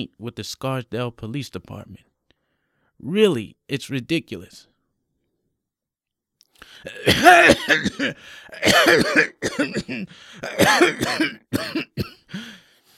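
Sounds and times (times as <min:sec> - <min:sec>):
speech: 0:00.0 - 0:02.1, 0:03.0 - 0:04.7, 0:06.6 - 0:12.6
sick man gasping: 0:06.6 - 0:11.2, 0:12.3 - 0:12.9
sick man in his late 60s coughing violently at a kitchen table: 0:06.8 - 0:12.4.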